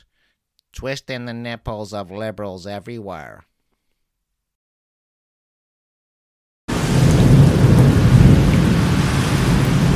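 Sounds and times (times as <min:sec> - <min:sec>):
speech: 0:00.8 - 0:03.5
deep rolling rumble of thunder: 0:06.7 - 0:09.9
heavy steady rain in a thunderstorm: 0:06.7 - 0:09.9.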